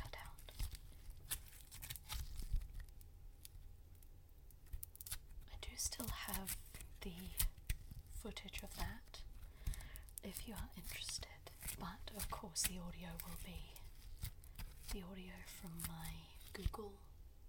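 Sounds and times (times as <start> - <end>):
soft whispering: 0.0 - 0.7, 5.4 - 9.3, 10.2 - 13.9, 14.8 - 17.2
beaded Floam slime crackling and squishing: 0.0 - 17.1
speech: 5.8 - 7.5, 8.2 - 9.1, 10.2 - 14.3, 14.9 - 17.1.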